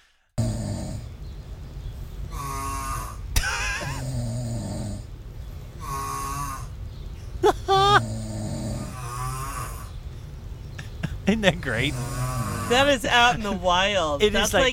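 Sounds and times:
loud human snoring recorded at a home in Washington DC: 0.4s - 1.2s, 2.3s - 5.1s, 7.9s - 10.0s, 11.7s - 13.0s
laughter: 7.4s - 8.0s, 10.8s - 12.1s, 12.7s - 14.7s
speech: 11.3s - 14.7s.

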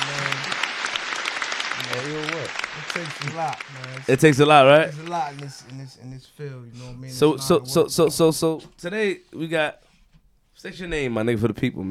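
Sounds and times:
crowd applauding: 0.0s - 6.1s
speech: 1.8s - 9.9s, 10.6s - 11.8s.

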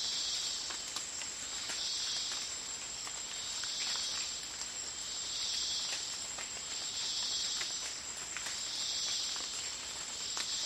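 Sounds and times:
dense chorus of insects in a rainforest: 0.0s - 10.6s
soft rain pattering in a rainforest at dawn: 0.0s - 10.6s.

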